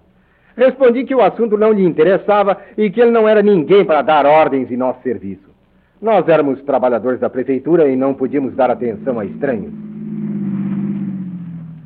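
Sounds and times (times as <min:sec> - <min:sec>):
speech: 0:00.6 - 0:09.9
car engine humming as the car approaches and slows: 0:07.2 - 0:11.8.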